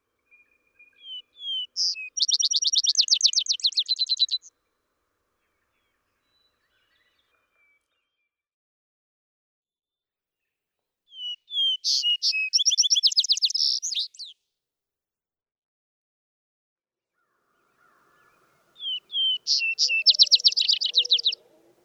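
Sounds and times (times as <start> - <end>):
Vesper sparrow singing: 0.3 - 4.5, 11.1 - 14.3, 17.8 - 21.8.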